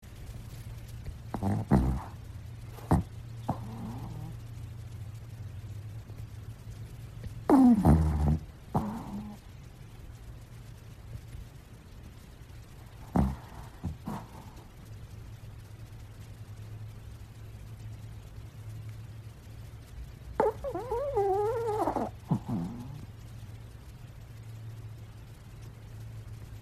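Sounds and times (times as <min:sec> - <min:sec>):
small dog snoring: 0:01.3 - 0:04.6, 0:07.2 - 0:09.5, 0:12.8 - 0:14.9, 0:20.4 - 0:23.2.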